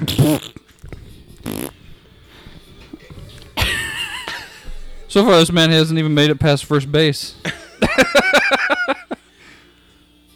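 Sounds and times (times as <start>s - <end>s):
farting noises: 0.0s - 2.0s
speech: 0.2s - 0.6s, 5.2s - 7.4s
quiet rustling: 0.8s - 3.6s
laughter: 3.0s - 5.1s, 7.4s - 9.2s.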